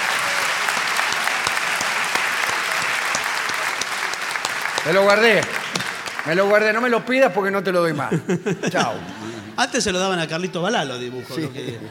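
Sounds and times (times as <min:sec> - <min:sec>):
audience clapping for a child's drawing: 0:00.0 - 0:07.3
speech: 0:04.8 - 0:11.8
laughter: 0:07.8 - 0:09.9, 0:11.2 - 0:11.8.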